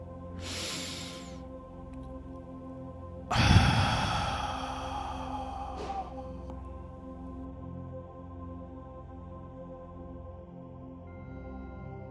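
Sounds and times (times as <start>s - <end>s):
long deep breaths in through nose, exhaling gently from mouth: 0.4s - 1.4s, 3.3s - 6.6s.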